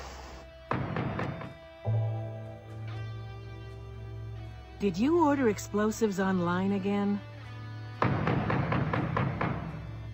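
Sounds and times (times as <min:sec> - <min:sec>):
firm knocking on a door: 0:00.7 - 0:01.6, 0:08.0 - 0:10.0
speech: 0:04.8 - 0:07.3.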